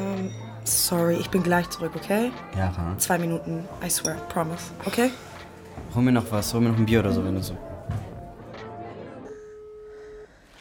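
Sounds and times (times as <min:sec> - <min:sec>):
speech: 0:00.7 - 0:05.3, 0:05.9 - 0:08.0
steady electronic phone tone: 0:09.3 - 0:10.4.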